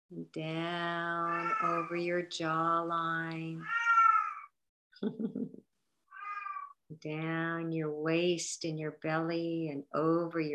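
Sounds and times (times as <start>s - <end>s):
speech: 0.1s - 3.8s, 5.0s - 5.6s, 6.9s - 10.5s
cat meowing: 1.3s - 1.9s, 3.6s - 4.5s, 6.1s - 6.8s
cat low grumbling chirp: 6.2s - 6.7s.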